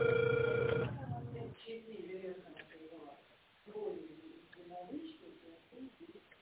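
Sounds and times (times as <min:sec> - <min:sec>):
telephone ringback tone during an outgoing call: 0:00.0 - 0:01.0.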